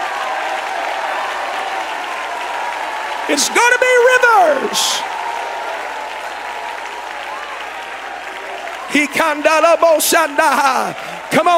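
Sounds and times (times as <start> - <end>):
audience clapping hands: 0.0 - 11.5
audience shouting with loud raised voices: 2.6 - 5.2
speech: 3.3 - 5.1, 8.9 - 11.5.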